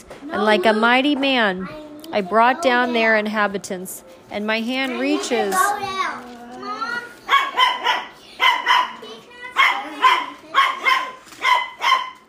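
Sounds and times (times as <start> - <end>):
speech: 0.3 - 6.3
dogs barking: 7.2 - 12.2.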